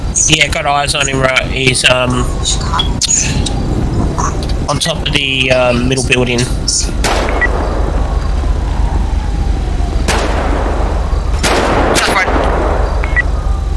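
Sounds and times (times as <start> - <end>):
noisy background: 0.0 - 13.7
speech: 0.2 - 3.6, 4.7 - 7.2
gunshots in a police video game: 7.0 - 8.0, 10.0 - 13.2.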